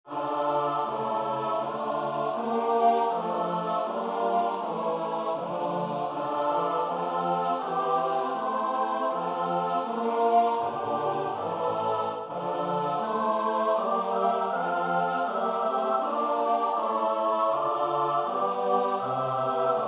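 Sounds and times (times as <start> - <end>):
choir singing in four parts S-A-T-B: 0.1 - 19.8.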